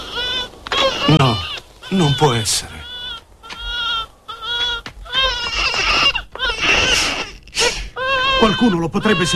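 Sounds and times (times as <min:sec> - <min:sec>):
baby crying: 0:00.0 - 0:09.3
speech: 0:01.9 - 0:02.9, 0:08.4 - 0:09.3.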